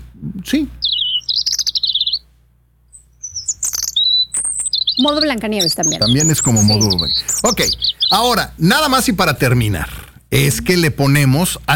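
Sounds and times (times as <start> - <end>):
faint low hum: 0.0 - 11.7
speech: 0.4 - 0.8, 5.0 - 11.7
European robin singing: 0.6 - 2.3, 2.9 - 9.2.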